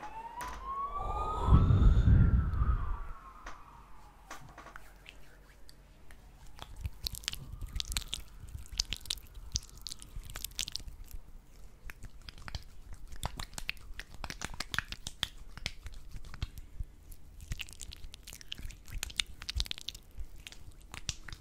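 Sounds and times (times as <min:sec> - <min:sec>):
ambulance siren wailing: 0:00.0 - 0:05.0, 0:06.2 - 0:10.2
wet squishing: 0:04.0 - 0:21.3.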